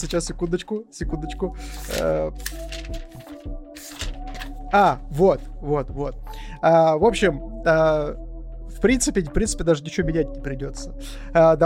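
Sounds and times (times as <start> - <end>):
speech: 0.0 - 4.0, 4.7 - 11.6
notebook pages being flipped: 0.0 - 5.0.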